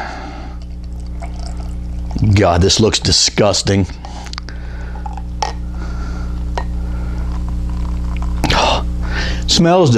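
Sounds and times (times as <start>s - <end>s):
low hum: 0.0s - 9.6s
drink pouring out: 0.6s - 2.8s, 7.4s - 8.4s
speech: 2.2s - 4.2s, 9.6s - 9.9s.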